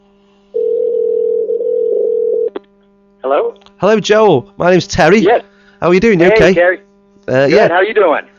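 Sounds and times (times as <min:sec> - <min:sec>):
electronic ringback tone on an outgoing phone call: 0:00.6 - 0:02.5
speech: 0:03.2 - 0:08.3.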